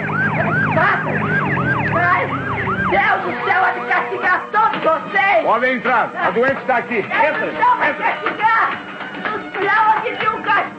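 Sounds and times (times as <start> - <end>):
ambulance siren wailing: 0.0 - 4.6
low rumble of traffic or an engine: 0.0 - 4.6
speech: 2.2 - 8.8, 9.6 - 10.7.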